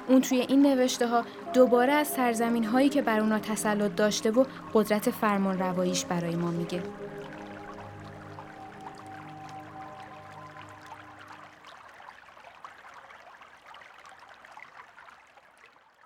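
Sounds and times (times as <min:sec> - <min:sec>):
sustained low tonal hum: 0:00.0 - 0:11.6
stream water flowing and trickling: 0:00.0 - 0:16.0
speech: 0:00.1 - 0:07.4.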